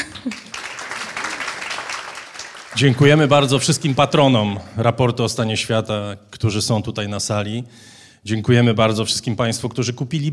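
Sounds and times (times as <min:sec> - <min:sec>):
live audience applause: 0:00.0 - 0:04.4
speech: 0:02.8 - 0:10.3.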